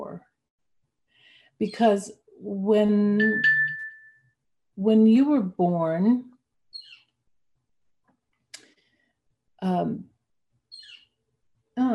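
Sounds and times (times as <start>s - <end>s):
speech: 1.6s - 3.6s, 4.8s - 6.3s, 9.6s - 10.1s, 11.8s - 11.9s
bird chirping outside: 6.7s - 7.2s, 10.7s - 11.2s.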